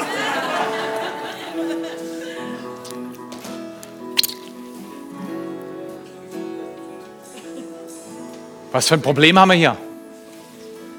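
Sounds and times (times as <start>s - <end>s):
laughter: 0.0s - 2.6s
capped plastic water bottle being squeezed: 4.2s - 4.6s
speech: 8.7s - 9.8s.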